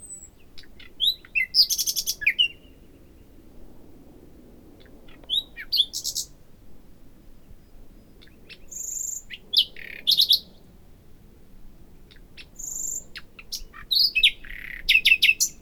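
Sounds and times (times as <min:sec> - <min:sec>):
common nightingale Luscinia megarhynchos singing: 0:00.0 - 0:03.4, 0:04.8 - 0:06.4, 0:07.4 - 0:10.6, 0:12.0 - 0:15.5
soft background hiss: 0:00.0 - 0:15.5.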